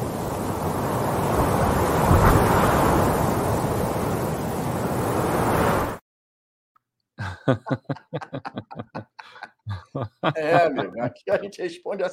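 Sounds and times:
loud steady rush of blowing wind: 0.0 - 6.0
choppy chuckling laughter: 7.2 - 11.4
speech: 7.5 - 8.6, 10.4 - 12.1.

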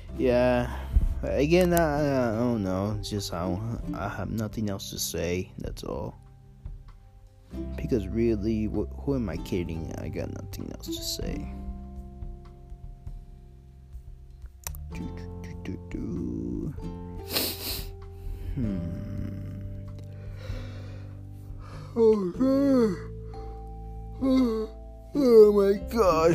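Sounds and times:
speech: 0.2 - 6.2, 7.5 - 11.6, 14.9 - 15.3, 18.6 - 19.0, 22.0 - 23.1, 24.2 - 26.3
person yawning: 17.3 - 19.8, 21.7 - 23.1, 24.2 - 25.5.

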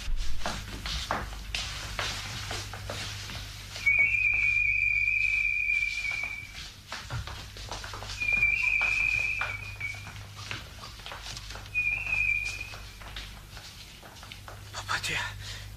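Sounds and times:
shuffling movement: 0.0 - 15.0
low hum: 0.0 - 15.7
long steady human whistle given after dark as a signal: 3.8 - 6.6, 8.1 - 10.2, 11.7 - 13.0.

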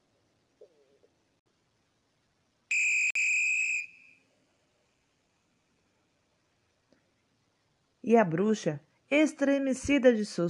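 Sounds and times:
loud shrill whistle blast: 2.7 - 4.2
speech: 8.1 - 10.4.

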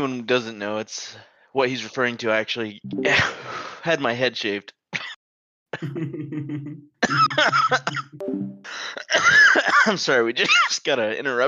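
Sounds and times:
speech: 0.0 - 4.8, 5.7 - 11.4
man coughing: 5.8 - 6.1, 7.0 - 8.1, 8.8 - 10.7.

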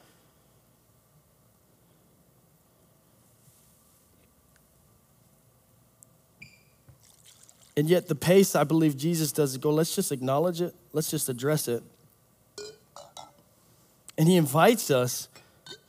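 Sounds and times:
water pouring and overflowing: 7.0 - 7.8
speech: 7.8 - 12.0, 14.2 - 15.4.

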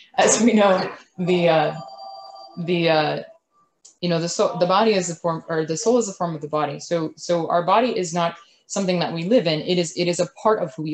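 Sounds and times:
speech: 0.1 - 1.9, 2.6 - 3.3, 4.0 - 10.9
mobile phone ringing: 0.8 - 3.3.

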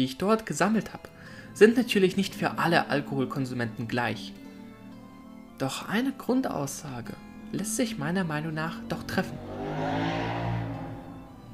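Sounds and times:
speech: 0.0 - 4.4, 5.6 - 10.1
motorcycle passing loudly outside window: 8.2 - 11.5.

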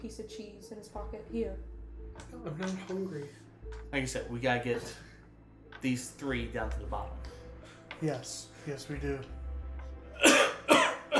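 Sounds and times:
speech: 0.0 - 5.1, 5.8 - 7.4, 8.0 - 9.4
sharp breathy coughs from a feverish person: 10.2 - 11.1.

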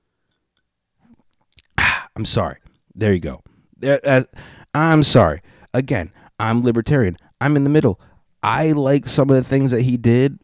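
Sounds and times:
person sipping a drink with soft mouth clicks and a gulp: 0.3 - 1.8
speech: 2.2 - 10.4.

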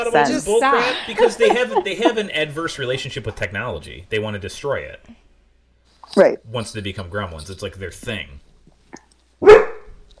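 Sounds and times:
laughter: 0.0 - 3.8
speech: 0.0 - 5.2, 6.1 - 8.4
dog barking: 9.4 - 9.9.

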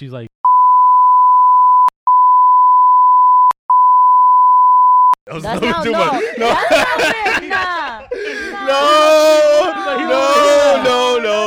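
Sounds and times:
speech: 0.0 - 0.3, 5.4 - 7.8, 8.7 - 11.4
censor bleep covering speech: 0.4 - 5.2
laughter: 5.3 - 11.4.

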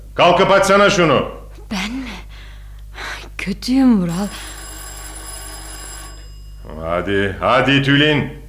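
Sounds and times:
speech: 0.2 - 2.0, 3.4 - 4.6, 6.8 - 8.4
electric doorbell ringing: 4.1 - 7.6.

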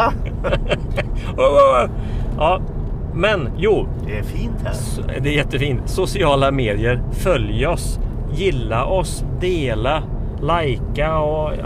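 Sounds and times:
laughter: 0.0 - 1.6
low rumble of a car driving, heard from inside the cabin: 0.0 - 11.6
speech: 0.0 - 11.6.

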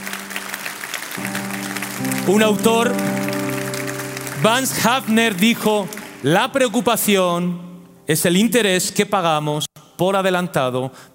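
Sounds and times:
congregation applauding: 0.0 - 6.7
sustained organ-like keyboard chords: 1.2 - 6.8
speech: 2.0 - 3.2, 4.4 - 11.1.

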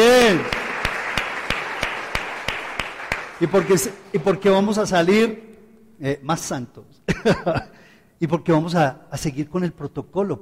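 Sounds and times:
crowd applauding: 0.0 - 4.5
sharp claps: 0.0 - 4.7
speech: 0.3 - 0.6, 3.4 - 10.4
laughter: 7.1 - 7.7.

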